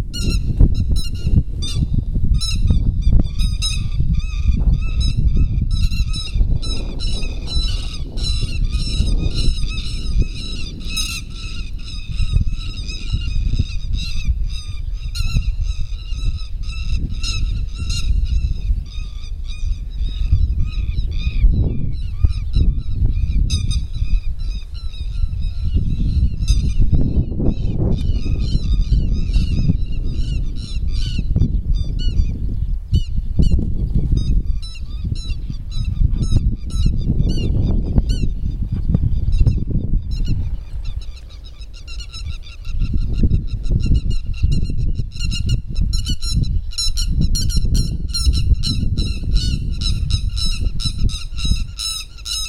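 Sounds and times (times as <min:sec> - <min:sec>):
grey-headed lapwing Vanellus cinereus calling: 0:00.1 - 0:52.4.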